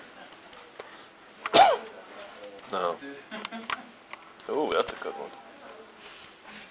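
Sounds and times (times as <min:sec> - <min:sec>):
person sneezing in a played video: 0:01.5 - 0:01.9
speech: 0:04.7 - 0:05.5.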